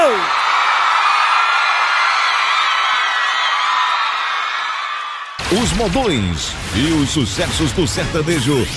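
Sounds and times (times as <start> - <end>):
large crowd clapping: 0.0 - 5.4
large crowd cheering with whoops and shouts: 0.0 - 7.0
speech: 5.6 - 8.7.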